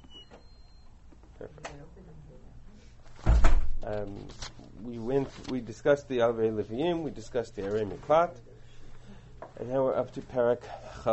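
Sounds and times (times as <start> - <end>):
speech: 1.4 - 8.5, 9.6 - 11.1
door opening with solid thud and rattle: 3.2 - 3.9.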